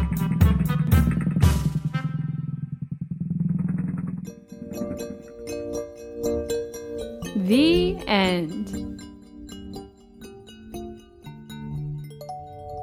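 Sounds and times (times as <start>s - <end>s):
small motor scooter riding away and revving: 0.0s - 5.6s
speech: 7.5s - 8.9s.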